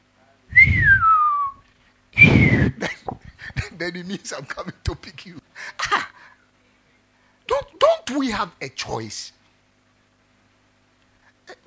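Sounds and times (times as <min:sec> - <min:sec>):
person whistling sliding falling notes: 0:00.5 - 0:01.6, 0:02.2 - 0:02.8
speech: 0:03.8 - 0:06.0, 0:08.1 - 0:09.4.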